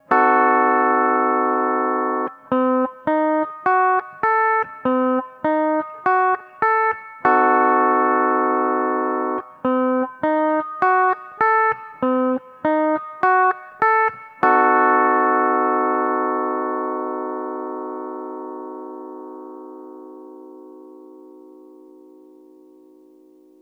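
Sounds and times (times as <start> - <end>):
C diminished seventh chord on steel guitar: 0.1 - 13.5, 14.4 - 23.6.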